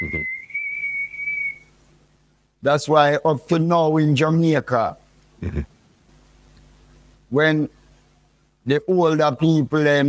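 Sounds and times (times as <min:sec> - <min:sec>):
person whistling a high-pitched note: 0:00.0 - 0:01.7
speech: 0:02.6 - 0:05.7, 0:07.3 - 0:07.8, 0:08.7 - 0:10.0.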